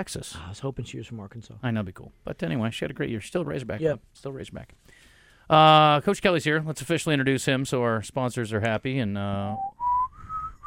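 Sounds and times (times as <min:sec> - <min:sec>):
speech: 0:00.0 - 0:09.7
person whistling a tune: 0:09.6 - 0:10.6.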